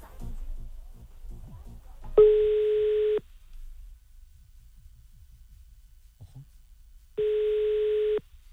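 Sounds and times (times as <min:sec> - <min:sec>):
phone ringback tone: 0:02.2 - 0:03.2, 0:07.2 - 0:08.2.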